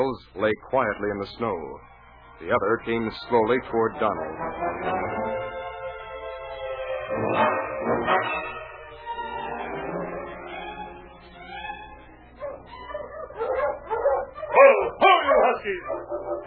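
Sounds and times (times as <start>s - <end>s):
speech: 0.0s - 5.5s, 7.1s - 8.5s, 15.6s - 16.4s
dog whining: 10.6s - 16.4s
dog barking: 12.4s - 16.4s.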